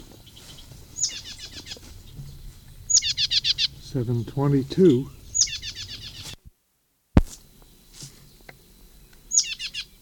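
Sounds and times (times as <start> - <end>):
plain titmouse giving scratchy chattering calls: 0.2 - 6.4, 9.0 - 9.9
speech: 3.9 - 5.2.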